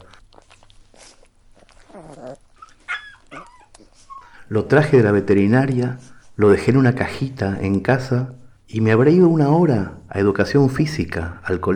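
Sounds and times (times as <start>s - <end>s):
small brown terrier puppy yipping and whimpering: 0.3s - 4.4s
small brown terrier puppy barking: 2.7s - 4.4s
speech: 4.5s - 11.7s.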